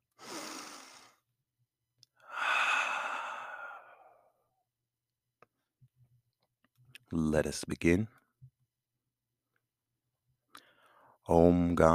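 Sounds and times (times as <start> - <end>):
deep breathing during seated meditation: 0.2 - 1.2, 2.2 - 4.4, 10.5 - 11.2
speech: 7.1 - 8.2, 11.3 - 11.9.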